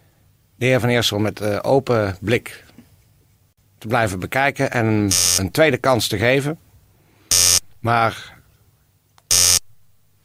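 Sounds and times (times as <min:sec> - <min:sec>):
speech: 0:00.6 - 0:02.7, 0:03.8 - 0:06.6, 0:07.8 - 0:08.4
telephone buzzing ring: 0:05.1 - 0:05.4, 0:07.3 - 0:07.6, 0:09.3 - 0:09.7.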